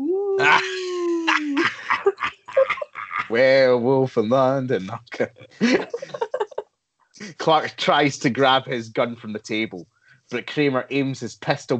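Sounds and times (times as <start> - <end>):
man howling in pain after being kicked in his wound: 0.4 - 1.9
laughter: 0.4 - 6.6, 7.2 - 9.8, 10.4 - 11.7
man yelping and gasping in pain: 1.7 - 2.0, 5.6 - 6.0
speech: 3.3 - 6.2, 7.2 - 11.7.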